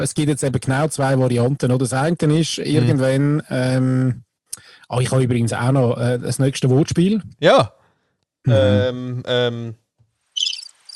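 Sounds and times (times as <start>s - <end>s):
speech: 0.0s - 4.3s, 4.9s - 7.8s, 8.4s - 9.8s
high thin bird chirps: 10.3s - 10.9s
bird harmonic calls: 10.4s - 10.9s.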